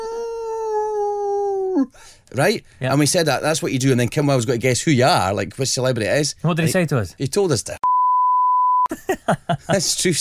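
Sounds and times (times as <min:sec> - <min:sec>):
person imitating a wolf howl: 0:00.0 - 0:01.9
speech: 0:01.8 - 0:07.8, 0:08.9 - 0:10.1.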